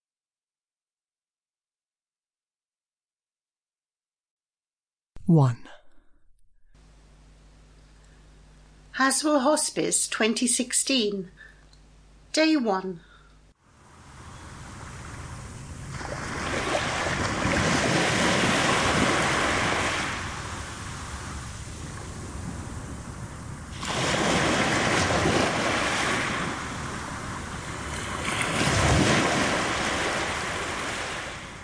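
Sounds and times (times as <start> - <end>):
speech: 5.3 - 5.8, 9.0 - 11.5, 12.4 - 13.1
sea waves splashing onto shingle beach: 15.9 - 22.8, 23.7 - 31.4.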